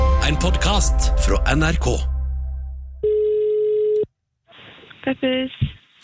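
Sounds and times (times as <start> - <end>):
speech: 0.3 - 2.1, 5.0 - 5.8
low hum: 0.4 - 3.4
telephone ringback tone of an outgoing call: 3.0 - 4.0.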